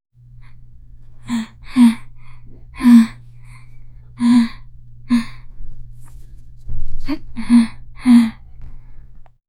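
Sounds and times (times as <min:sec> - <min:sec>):
quiet frightened whimper: 0:00.4 - 0:05.7, 0:07.0 - 0:09.0.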